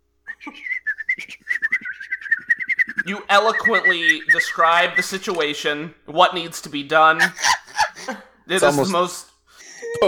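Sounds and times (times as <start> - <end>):
person whistling imitating a bird call from up in a tower: 0.3 - 5.2
speech: 0.4 - 0.8, 3.1 - 9.3.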